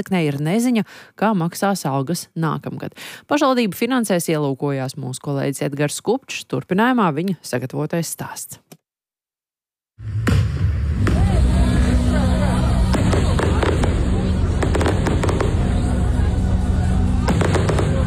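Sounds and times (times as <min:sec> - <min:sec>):
speech: 0:00.0 - 0:08.8
constant rumbling wash of noise: 0:10.0 - 0:18.0
fireworks crackling and booming at a city festival: 0:10.3 - 0:16.1, 0:17.1 - 0:18.0
faint crowd murmur: 0:11.1 - 0:18.0.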